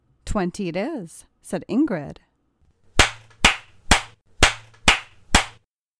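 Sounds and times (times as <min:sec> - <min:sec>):
speech: 0:00.4 - 0:02.3
sharp loud spanking smacks: 0:03.0 - 0:05.6.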